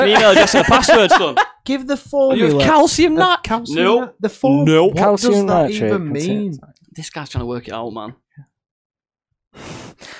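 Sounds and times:
laughter: 0.0 - 1.7
speech: 0.0 - 8.5
heavy breathing: 9.6 - 10.1.

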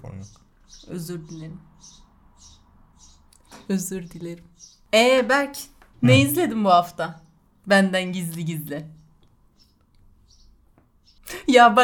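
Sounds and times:
birds chirping: 0.0 - 5.4, 6.0 - 11.7
speech: 0.1 - 2.6, 3.7 - 9.0, 11.5 - 11.8
low hum: 6.0 - 6.4.

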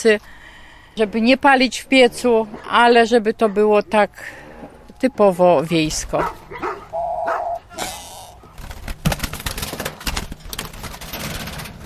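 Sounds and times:
speech: 0.0 - 0.4, 1.0 - 4.4, 5.0 - 6.7
large St. Bernard dog barking: 6.2 - 7.8
St. Bernard dog whining: 6.5 - 8.4.

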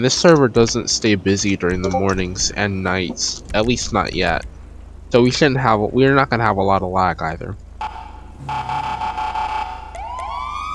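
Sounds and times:
speech: 0.0 - 7.6
police siren sounding high-low two-tone pattern: 7.8 - 10.7.

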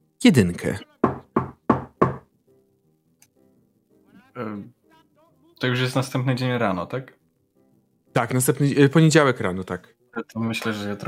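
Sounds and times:
speech: 0.2 - 0.9, 4.4 - 4.8, 5.6 - 7.2, 8.2 - 11.0
knocking on a door: 1.0 - 2.3.

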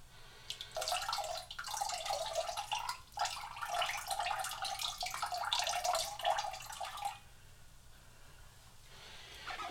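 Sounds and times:
lemon juice pouring into a mixture: 0.5 - 7.2.

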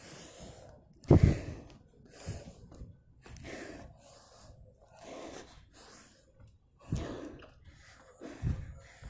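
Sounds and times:
heavy uneven breathing with gasping inhales and sharp exhales: 0.0 - 9.0.

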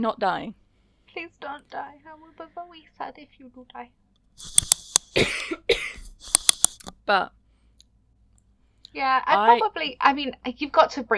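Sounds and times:
speech: 0.0 - 0.6, 1.2 - 4.6, 5.2 - 5.9, 7.1 - 7.4, 8.9 - 11.1
sharp clicks: 4.2 - 5.2, 6.0 - 7.0
harsh raspy coughs: 5.1 - 6.2.

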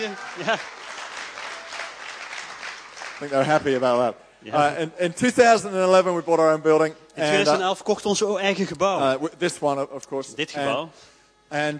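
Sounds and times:
speech: 0.0 - 0.8, 3.2 - 11.7
audience applause: 0.0 - 3.8.

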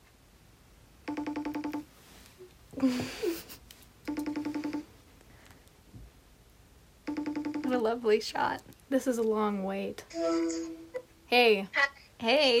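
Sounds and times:
mobile phone call ringing: 1.1 - 1.9, 4.1 - 4.9, 7.1 - 7.9
speech: 2.8 - 3.4, 7.8 - 12.5.

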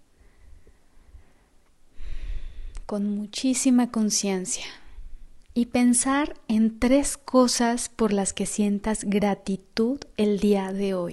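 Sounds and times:
deep breath in and out: 0.1 - 2.9
speech: 2.9 - 4.8, 5.6 - 11.1.

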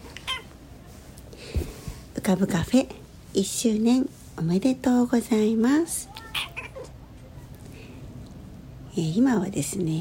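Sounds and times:
cat meowing: 0.2 - 0.5, 6.1 - 6.9
speech: 2.3 - 6.2, 9.0 - 10.0.

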